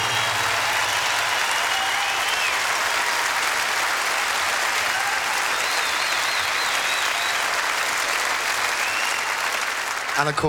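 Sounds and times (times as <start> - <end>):
faint cheers: 0.0 - 3.6, 4.4 - 10.4
large audience applauding: 0.0 - 10.4
audience whistles: 0.8 - 2.6, 5.4 - 7.5, 8.7 - 9.5
speech: 10.2 - 10.4.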